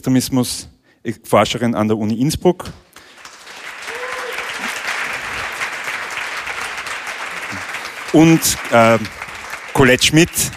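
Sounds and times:
speech: 0:00.0 - 0:02.8, 0:08.1 - 0:09.2, 0:09.8 - 0:10.5
applause from a sizable audience: 0:03.0 - 0:10.5
faint voices and whoops: 0:03.8 - 0:04.8.

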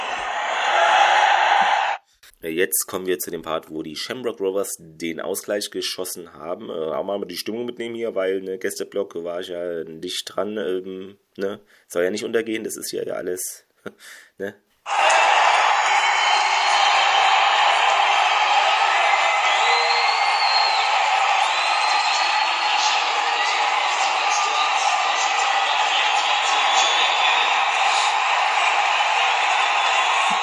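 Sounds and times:
football stadium crowd shouting: 0:00.0 - 0:02.0, 0:14.9 - 0:30.4
large football stadium crowd roaring: 0:00.0 - 0:02.0, 0:14.9 - 0:30.4
speech: 0:02.4 - 0:15.0
scattered whistles in a football stadium crowd: 0:14.9 - 0:30.4.

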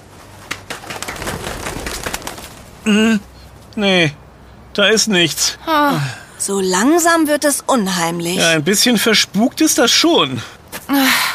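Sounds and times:
pigeon flying away: 0:00.4 - 0:02.7
speech: 0:02.9 - 0:04.2, 0:04.8 - 0:11.3.

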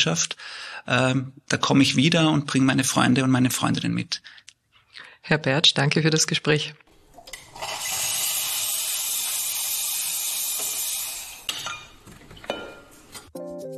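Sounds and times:
speech: 0:00.0 - 0:04.5, 0:05.2 - 0:06.8
coffee machine steam wand hissing in a campus coffee lab: 0:07.5 - 0:11.6
cups and dishes clinking: 0:11.5 - 0:13.3.

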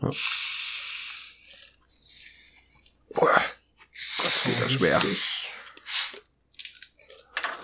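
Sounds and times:
speech: 0:00.1 - 0:00.3, 0:04.6 - 0:05.3
gas hissing from soft drink bottle being twisted open: 0:00.2 - 0:01.4, 0:04.0 - 0:06.3.

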